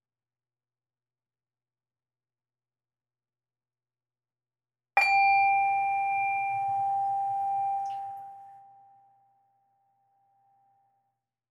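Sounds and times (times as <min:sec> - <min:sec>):
meditation bell struck to begin a sitting meditation: 0:05.0 - 0:09.2.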